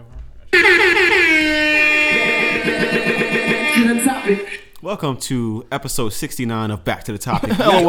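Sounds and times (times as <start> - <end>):
air horn sound effect blaring: 0.5 - 4.7
speech: 4.3 - 7.8.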